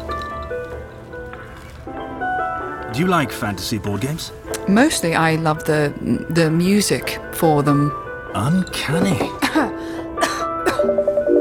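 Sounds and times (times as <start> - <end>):
speech: 3.0 - 9.7
dry non-productive coughs: 9.4 - 11.0.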